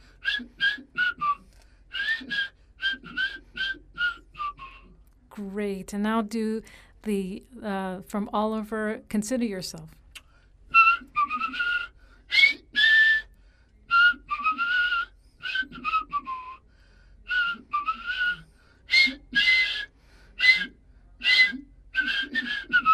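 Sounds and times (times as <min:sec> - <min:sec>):
person whistling a lively melody on a double whistle: 0:00.2 - 0:05.0, 0:10.7 - 0:16.6, 0:17.3 - 0:22.9
speech: 0:05.4 - 0:10.0.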